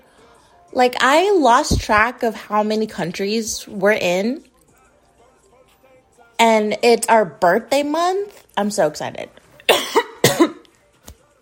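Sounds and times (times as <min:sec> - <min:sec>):
speech: 0:00.7 - 0:04.5, 0:06.4 - 0:09.4
person coughing: 0:09.6 - 0:10.7.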